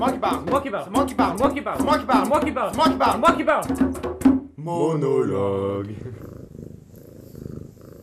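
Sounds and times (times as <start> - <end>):
speech: 0.2 - 4.1, 4.7 - 6.2
domestic cat purring: 5.9 - 8.0.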